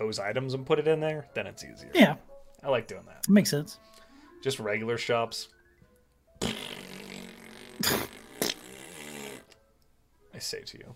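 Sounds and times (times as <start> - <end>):
speech: 0.0 - 5.6, 6.4 - 6.6, 10.4 - 10.9
long loud fart with sputtering bursts: 6.4 - 9.6.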